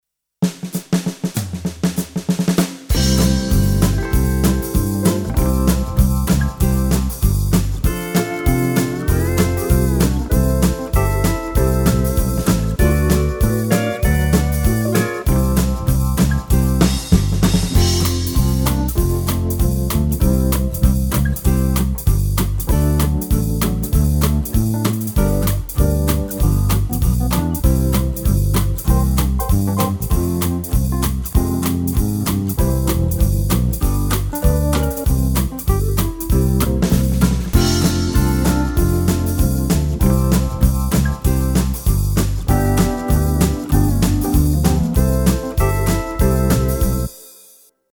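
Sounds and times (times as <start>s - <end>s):
western swing music: 0.5s - 47.4s.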